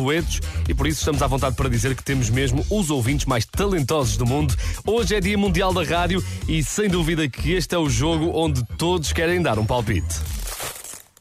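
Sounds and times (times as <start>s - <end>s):
speech: 0.0s - 10.6s
package being opened with crinkling and rustling packaging: 10.2s - 11.1s.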